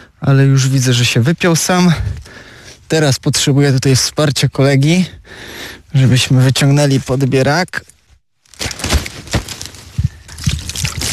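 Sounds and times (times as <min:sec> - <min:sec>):
speech: 0:00.2 - 0:07.9
water poured over a landed carp: 0:10.2 - 0:11.1.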